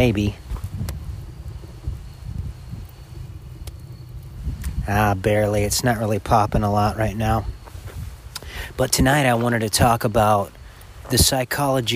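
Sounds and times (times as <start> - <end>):
speech: 0.0 - 0.4, 4.9 - 7.6, 8.5 - 11.9
strong wind blowing outdoors buffeting the microphone: 0.0 - 11.9
faint sharp clicks: 3.6 - 4.8.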